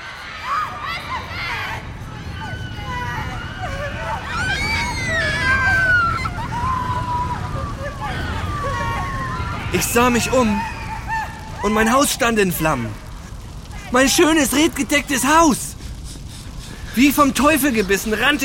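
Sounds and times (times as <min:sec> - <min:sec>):
crowd shouting and screaming: 0:00.0 - 0:15.7
crowd babble: 0:00.0 - 0:18.4
speech: 0:09.8 - 0:10.8, 0:11.6 - 0:13.0, 0:13.9 - 0:15.7, 0:17.0 - 0:18.4.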